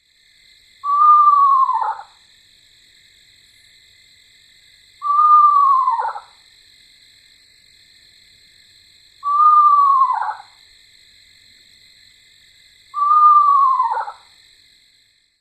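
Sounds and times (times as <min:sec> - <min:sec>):
Eastern Screech-Owl whinny: 0:00.8 - 0:02.1, 0:05.0 - 0:06.3, 0:09.2 - 0:10.5, 0:13.0 - 0:14.2.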